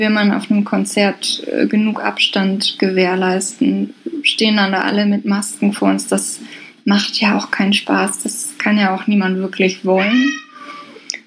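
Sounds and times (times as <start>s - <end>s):
speech: 0.0s - 10.4s
cat meowing: 9.9s - 11.0s.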